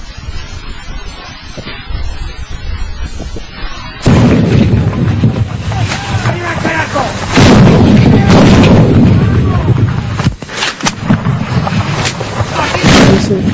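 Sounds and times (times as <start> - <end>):
bomb blasts: 0.0 - 13.5
heavy artillery fire: 4.0 - 13.5.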